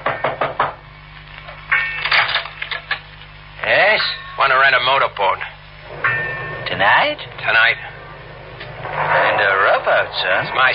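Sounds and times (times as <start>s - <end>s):
sharp knocking on a door: 0.0s - 0.8s
low hum: 0.0s - 10.7s
speech: 4.5s - 5.5s, 6.8s - 7.9s, 9.4s - 10.7s.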